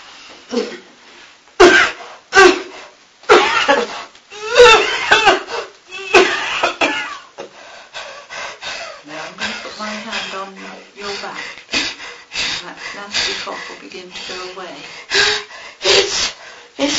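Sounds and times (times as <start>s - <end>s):
speech: 0.5s - 0.8s
person coughing harshly: 1.6s - 2.7s, 3.3s - 7.3s
person whimpering with strained vocal sounds: 3.7s - 4.9s, 8.8s - 16.9s.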